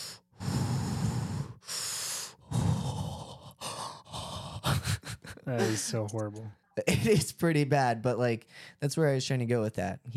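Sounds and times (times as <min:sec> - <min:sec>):
person imitating heavy creepy breathing: 0:00.0 - 0:06.0
speech: 0:05.5 - 0:10.1.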